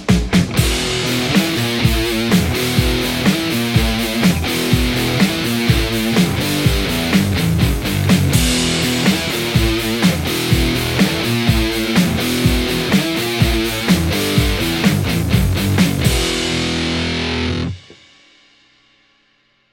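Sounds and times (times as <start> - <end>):
Les Paul electric guitar: 0.1 - 17.9.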